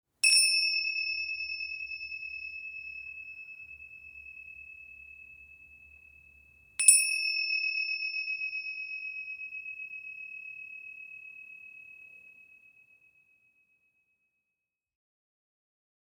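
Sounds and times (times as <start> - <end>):
large tingsha cymbals ringing: 0.2 - 12.1.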